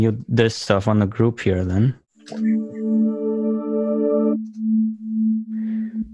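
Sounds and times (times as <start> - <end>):
speech: 0.0 - 3.1
synthesizer sine tone at a low-mid pitch: 2.3 - 6.1.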